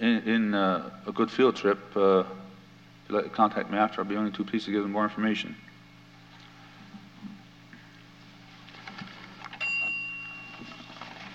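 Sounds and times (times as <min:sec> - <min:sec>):
speech: 0:00.0 - 0:02.4, 0:03.1 - 0:05.7
bright timer bell ringing: 0:09.6 - 0:11.0.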